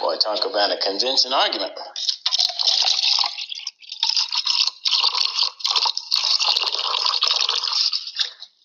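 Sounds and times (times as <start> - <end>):
speech: 0.2 - 2.0
water poured into a drinking glass: 2.2 - 8.4.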